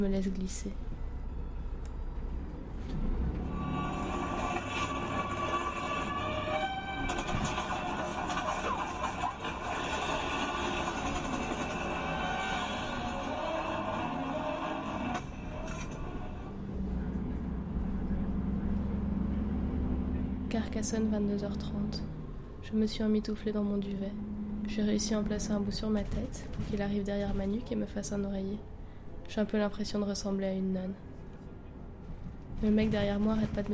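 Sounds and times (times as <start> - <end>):
speech: 0.0 - 0.9, 20.8 - 28.7, 29.3 - 31.1, 32.6 - 33.7
moving bus engine droning on the road: 0.0 - 33.7
rattles inside a moving bus: 3.9 - 16.5.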